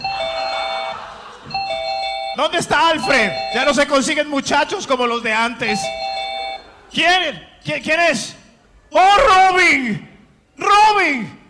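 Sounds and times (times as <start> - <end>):
laughter: 0.0 - 2.2, 6.4 - 7.3
electronic doorbell chime: 0.0 - 3.9, 5.7 - 6.6
speech: 2.4 - 6.1, 6.9 - 11.4.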